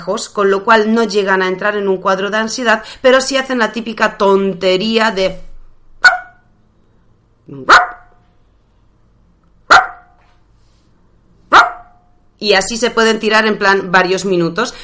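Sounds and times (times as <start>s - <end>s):
speech: 0.0s - 6.2s, 7.5s - 7.8s, 12.4s - 14.8s
dog barking for attention: 6.0s - 6.5s, 7.7s - 8.2s, 9.7s - 10.2s, 11.5s - 12.1s.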